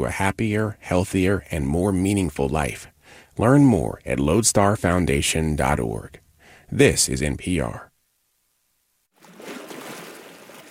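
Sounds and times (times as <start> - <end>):
speech: 0.0 - 7.9
waves lapping along the shoreline of Cortez Island in British Columbia: 9.2 - 10.6.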